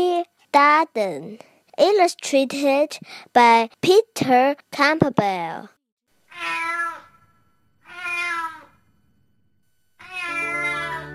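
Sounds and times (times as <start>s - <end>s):
speech: 0.5s - 5.8s
cat meowing: 6.3s - 7.1s, 7.8s - 8.8s, 10.0s - 11.1s.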